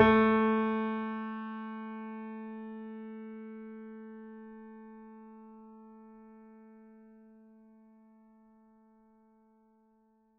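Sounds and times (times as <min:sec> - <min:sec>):
mini grand piano: 0:00.0 - 0:06.4.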